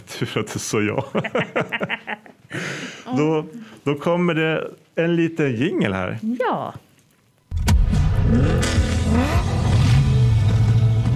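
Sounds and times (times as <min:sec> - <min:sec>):
speech: 0:00.2 - 0:06.8, 0:08.3 - 0:09.2
laughter: 0:00.8 - 0:02.7
V8 engine revving: 0:07.8 - 0:11.1.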